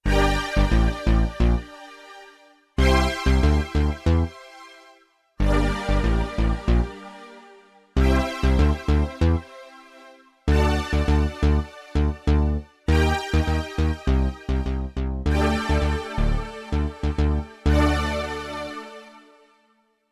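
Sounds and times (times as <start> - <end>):
split synth bass on a Yamaha TX16W sampler: 0.0 - 1.9, 2.8 - 4.4, 5.4 - 7.1, 8.0 - 9.5, 10.5 - 19.1.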